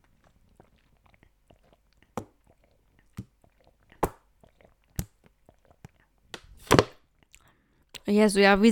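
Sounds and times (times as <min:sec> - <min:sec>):
sipping and swallowing water: 0:00.0 - 0:06.3
speech: 0:08.1 - 0:08.7.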